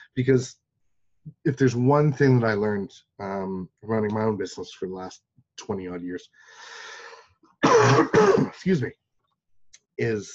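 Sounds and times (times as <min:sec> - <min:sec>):
speech: 0:00.2 - 0:00.6, 0:01.2 - 0:06.9, 0:07.6 - 0:09.0, 0:10.0 - 0:10.3
man coughing and clearing his throat: 0:07.6 - 0:08.6.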